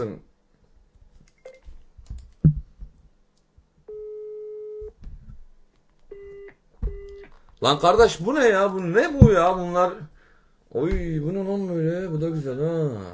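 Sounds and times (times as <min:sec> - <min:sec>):
speech: 0:00.0 - 0:00.3, 0:07.6 - 0:10.1, 0:10.7 - 0:13.1
telephone call tones while dialing: 0:06.1 - 0:07.3.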